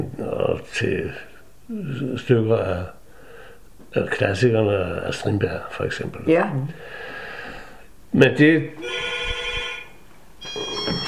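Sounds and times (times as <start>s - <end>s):
speech: 0.0s - 3.0s, 3.9s - 7.1s, 8.1s - 9.1s
telephone ringing with steady electronic tones: 8.8s - 11.0s.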